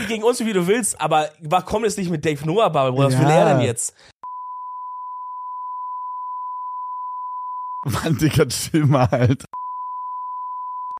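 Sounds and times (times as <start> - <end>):
speech: 0.1 - 4.1, 7.8 - 9.6
censor bleep single pure tone: 4.2 - 7.9, 9.6 - 10.9.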